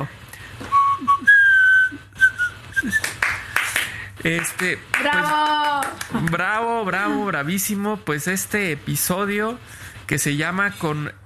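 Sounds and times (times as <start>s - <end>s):
noisy bursts: 0.0s - 11.2s
person whistling a traditional birthday song: 0.6s - 3.6s
speech: 4.2s - 11.2s.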